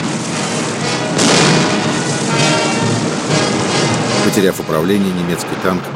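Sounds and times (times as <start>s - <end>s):
tanks firing at an enemy German tank: 0.0s - 4.2s
explosion in a wartime battle: 0.0s - 4.7s
speech: 4.3s - 5.9s.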